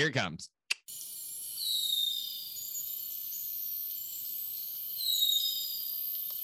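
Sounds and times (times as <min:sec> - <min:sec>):
speech: 0:00.0 - 0:00.6
insects buzzing: 0:00.9 - 0:06.4
harpy eagle giving thin high whistling cries: 0:01.5 - 0:03.5, 0:04.5 - 0:06.3.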